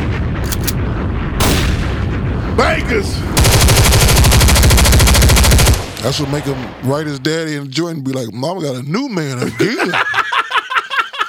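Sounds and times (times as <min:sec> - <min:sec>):
bomb explosions with loud broadband booms and rumbling roar: 0:00.0 - 0:07.2
speech: 0:02.7 - 0:03.6, 0:06.0 - 0:10.3
laughter: 0:09.3 - 0:11.2.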